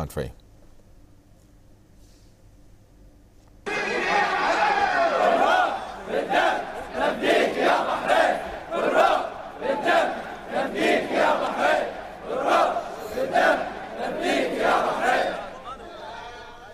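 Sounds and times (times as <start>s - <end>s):
speech: 0.0s - 0.4s
large crowd of protesters chanting in unison outdoors: 3.7s - 16.7s.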